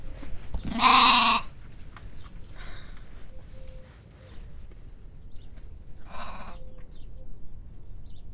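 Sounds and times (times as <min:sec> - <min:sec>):
domestic goat bleating briefly in Hortobágy National Park: 0:00.7 - 0:01.6.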